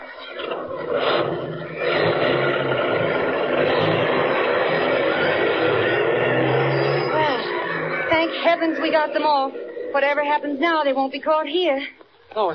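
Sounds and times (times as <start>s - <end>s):
engine of a loaded bus roaring as it pulls away: 0.0s - 10.7s
speech: 8.8s - 12.5s.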